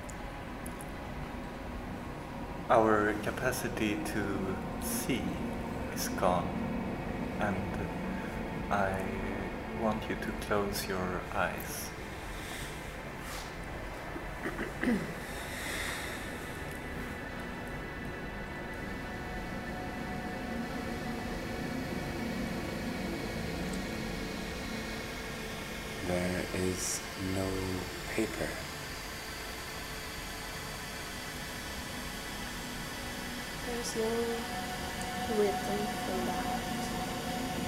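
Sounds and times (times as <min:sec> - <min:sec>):
continuous white noise: 0:00.0 - 0:37.6
speech: 0:02.7 - 0:06.7, 0:07.4 - 0:08.0, 0:08.7 - 0:11.9, 0:14.4 - 0:15.2, 0:26.6 - 0:28.6, 0:33.8 - 0:34.7, 0:35.3 - 0:36.6.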